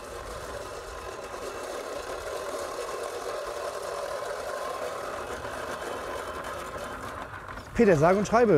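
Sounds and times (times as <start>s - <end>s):
manual reel lawnmower with no motor cutting grass: 0.0s - 8.5s
speech: 7.8s - 8.5s.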